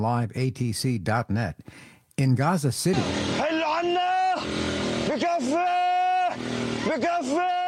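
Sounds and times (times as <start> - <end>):
speech: 0.0 - 5.7, 6.8 - 7.6
car horns blaring in congested road traffic: 3.0 - 7.6
congested road traffic noise: 3.0 - 7.6.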